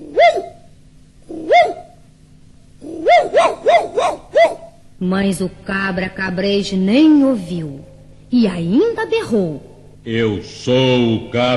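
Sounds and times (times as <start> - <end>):
small dog barking: 0.0 - 0.6, 1.3 - 2.0, 2.8 - 4.8
speech: 5.0 - 11.5.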